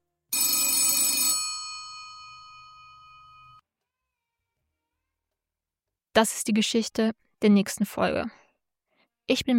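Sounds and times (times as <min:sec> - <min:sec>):
telephone bell ringing: 0:00.3 - 0:03.6
speech: 0:06.2 - 0:08.4, 0:09.3 - 0:09.5.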